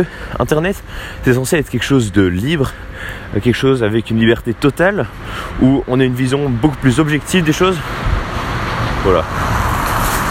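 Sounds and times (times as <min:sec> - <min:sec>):
speech: 0:00.0 - 0:08.2, 0:09.0 - 0:09.6
car engine and tires rushing past: 0:07.5 - 0:10.3.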